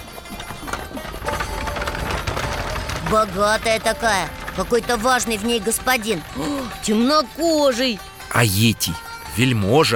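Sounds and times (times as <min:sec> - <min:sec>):
horse hooves clip-clopping pulling a chariot along a road: 0:00.0 - 0:06.8
rich chariot rolling along a road: 0:00.0 - 0:08.2
speech: 0:03.1 - 0:09.9.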